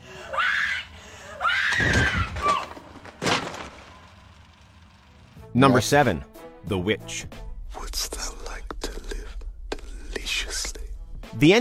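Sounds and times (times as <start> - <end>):
woman screaming in anguish in horror film: 0.2 - 2.8
speech: 5.6 - 7.4, 11.4 - 11.5.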